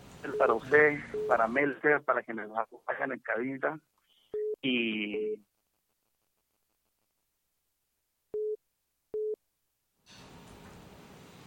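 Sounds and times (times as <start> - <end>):
loud continuous hiss: 0.0 - 2.5, 10.1 - 11.4
telephone busy tone beeps after a phone call drops: 0.3 - 1.4, 4.4 - 4.6, 5.2 - 5.4, 8.4 - 8.6, 9.2 - 9.4
speech: 0.3 - 3.9, 4.6 - 5.5.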